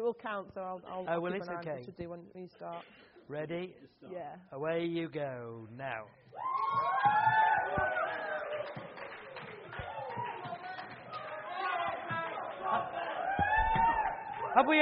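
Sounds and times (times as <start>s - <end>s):
speech: 0.1s - 8.9s, 14.6s - 14.8s
lively crowd chattering: 7.7s - 14.8s.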